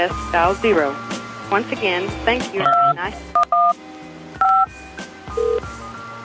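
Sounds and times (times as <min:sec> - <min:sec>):
speech: 0:00.0 - 0:03.9
touch-tone telephone keypad beeps dialing a room number: 0:02.6 - 0:03.8, 0:04.4 - 0:04.7, 0:05.4 - 0:05.6.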